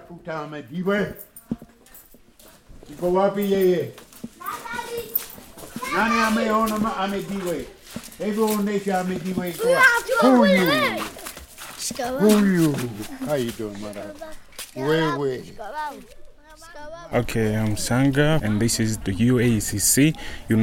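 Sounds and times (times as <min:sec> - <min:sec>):
speech: 0:00.1 - 0:01.3, 0:02.9 - 0:04.0, 0:05.9 - 0:11.1, 0:11.9 - 0:16.2, 0:16.8 - 0:20.6
children chattering and calling in a community center: 0:04.2 - 0:20.6.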